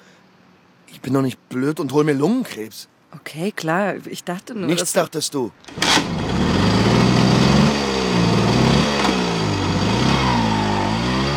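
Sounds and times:
speech: 0.9 - 6.6
moped engine circling a market square: 5.7 - 11.3.

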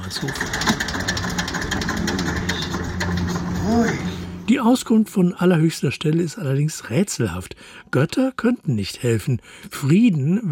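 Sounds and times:
tractor engine idling: 0.0 - 4.6
speech: 0.1 - 0.8, 3.7 - 10.5.

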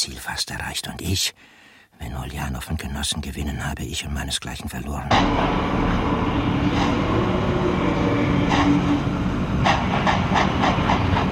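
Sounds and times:
speech: 0.0 - 9.2
clanking knocks of a train at a station: 5.1 - 11.3
train standing at a station before departure, rumbling hiss: 5.1 - 11.3.

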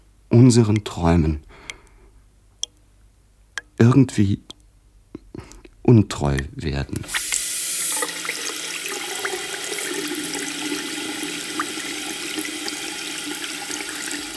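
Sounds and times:
speech: 0.4 - 1.6, 3.8 - 4.6, 5.4 - 7.3
water running from a tap: 7.0 - 14.3.

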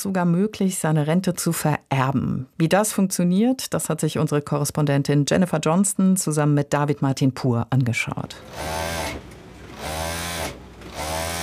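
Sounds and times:
speech: 0.0 - 9.2
sewing machine running in a clothing alterations shop in a covered market: 8.4 - 11.4.

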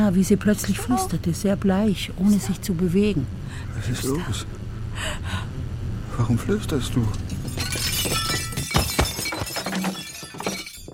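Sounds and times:
speech: 0.1 - 5.4, 6.2 - 7.7
clattering debris: 7.0 - 10.9
glasses shattering: 7.1 - 10.9.

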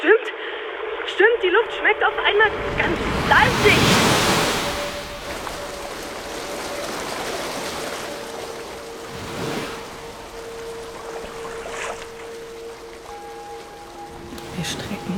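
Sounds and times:
faint steady tone: 0.3 - 15.1
ocean surf with waves breaking: 0.3 - 15.1
speech: 1.1 - 4.2.

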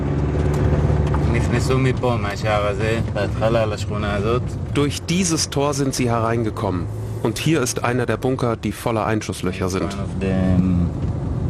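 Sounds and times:
car engine and road rumble driving through a kibbutz: 0.0 - 11.4
speech: 1.4 - 11.0.

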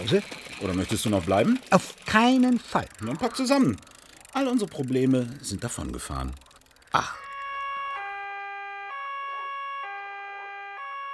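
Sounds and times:
speech: 0.0 - 7.2
police car siren wailing in a two-tone pattern: 7.0 - 11.1.

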